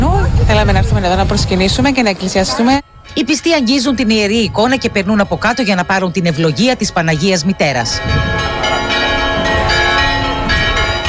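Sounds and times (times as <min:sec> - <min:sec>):
speech: 0:00.6 - 0:08.7
church bells ringing joyfully for a religious festival: 0:02.4 - 0:11.0.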